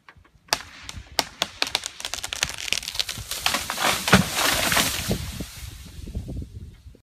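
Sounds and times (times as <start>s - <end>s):
tree breaking: 0.5s - 5.8s.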